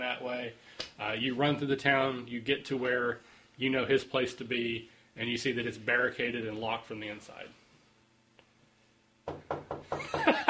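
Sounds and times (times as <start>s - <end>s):
speech: 0.0s - 7.6s
knocking on a door: 9.2s - 10.4s.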